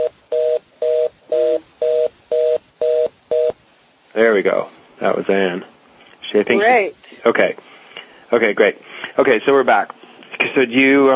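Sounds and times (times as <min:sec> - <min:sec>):
telephone line tone beeping after a dropped connection: 0:00.0 - 0:03.6
speech: 0:04.2 - 0:05.7, 0:06.3 - 0:07.7, 0:08.3 - 0:11.1.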